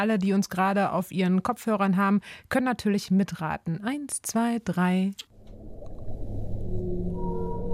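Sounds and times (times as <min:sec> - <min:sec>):
speech: 0:00.0 - 0:05.3
dense underwater rumble: 0:05.3 - 0:07.7
low moaning whale calls: 0:06.1 - 0:07.7.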